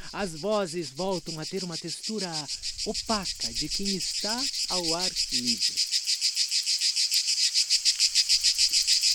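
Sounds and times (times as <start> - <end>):
loud shrill cicadas buzzing in the trees of a large garden: 0.0 - 9.1
speech: 0.1 - 6.0.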